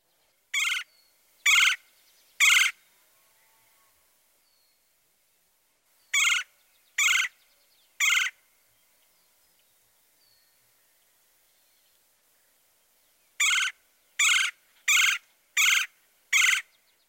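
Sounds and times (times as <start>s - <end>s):
red-bellied woodpecker giving low-pitched rolling chirr calls: 0.5s - 2.8s, 6.1s - 8.4s, 13.4s - 16.9s.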